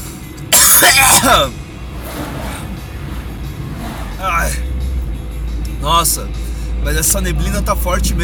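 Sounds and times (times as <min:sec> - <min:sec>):
rough raspy cough: 0:00.5 - 0:01.5
speech: 0:01.2 - 0:01.6, 0:04.2 - 0:04.7, 0:05.8 - 0:08.2.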